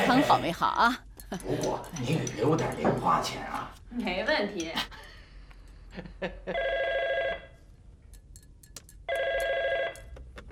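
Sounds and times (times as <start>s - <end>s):
speech: 0.1s - 5.1s, 6.0s - 7.4s
telephone ringing: 6.5s - 7.6s, 9.1s - 10.1s.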